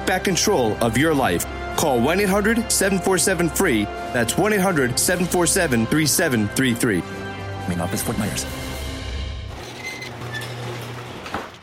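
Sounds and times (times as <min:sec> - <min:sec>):
speech: 0:00.1 - 0:07.1, 0:07.8 - 0:08.7
garage door mechanism running with motorized hum and rattling: 0:09.5 - 0:11.6.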